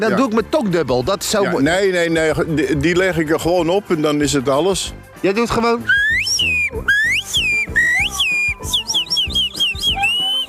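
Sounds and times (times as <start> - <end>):
speech: 0.0 - 7.5
loud two-finger whistle made with little finger and index finger: 5.9 - 10.4.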